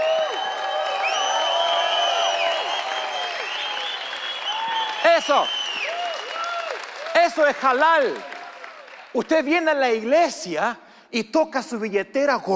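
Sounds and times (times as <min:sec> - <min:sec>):
sharp whistles: 0:00.0 - 0:06.0
shouted whoops: 0:00.0 - 0:07.2
church audience cheering: 0:00.0 - 0:09.1
speech: 0:05.2 - 0:05.6, 0:07.2 - 0:08.3, 0:09.1 - 0:12.5.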